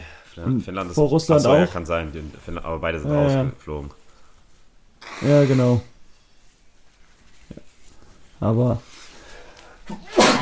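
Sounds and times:
speech: 0.4 - 4.0, 5.2 - 5.9, 8.4 - 8.9
sharp sneeze: 9.9 - 10.4.

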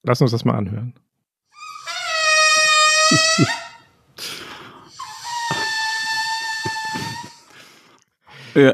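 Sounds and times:
speech: 0.0 - 1.1, 3.1 - 3.6, 8.6 - 8.7
air squealing out of a fully inflated balloon's stretched neck: 1.5 - 7.9.

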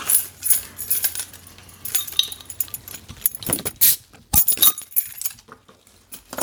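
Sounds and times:
bottle clattering and handling noise: 0.0 - 5.5
glass beer bottles clinking and rattling: 0.5 - 5.4.

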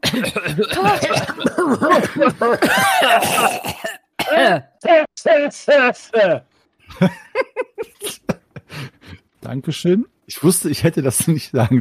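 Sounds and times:
laughter: 0.0 - 3.2, 6.9 - 9.0
several people making staged coughs: 0.0 - 4.7
speech: 0.2 - 7.5, 9.4 - 11.7.

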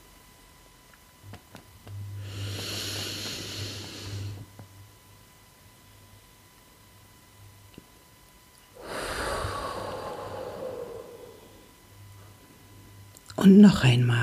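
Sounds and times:
deep breathing in and out in a guided breathing exercise: 2.2 - 4.5, 8.8 - 12.8
speech: 13.4 - 14.2.

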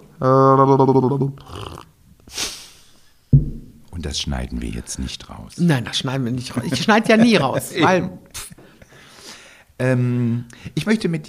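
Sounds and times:
voice imitating bubbling: 0.2 - 1.9
speech: 0.2 - 2.4, 4.0 - 8.5, 9.8 - 11.2
laughter: 6.5 - 8.7.

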